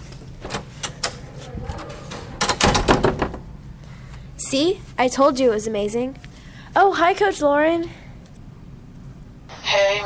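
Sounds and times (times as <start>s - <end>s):
door scraping and rattling as it swings open: 0.4s - 3.5s
speech: 4.5s - 6.2s, 6.8s - 8.0s.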